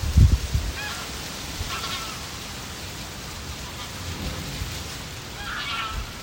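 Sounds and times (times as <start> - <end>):
wind blowing through a small city garden in Zeeland: 0.0 - 6.2
faint bird calls: 0.7 - 2.5, 3.4 - 6.2.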